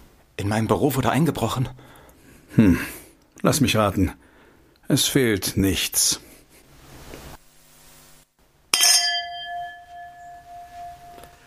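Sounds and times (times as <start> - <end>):
speech: 0.4 - 4.3, 4.9 - 6.3
glasses clinking in a toast: 8.7 - 11.4.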